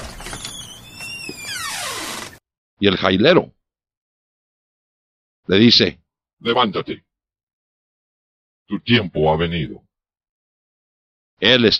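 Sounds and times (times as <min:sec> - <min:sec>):
heavy jail cell door creaking open: 0:00.0 - 0:02.4
speech: 0:02.8 - 0:03.6, 0:05.5 - 0:07.0, 0:08.7 - 0:09.8, 0:11.4 - 0:11.7.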